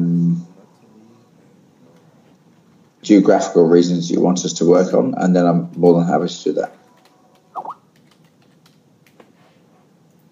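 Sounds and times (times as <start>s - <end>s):
speech: 3.0s - 6.8s
typing on a computer keyboard: 6.7s - 9.2s.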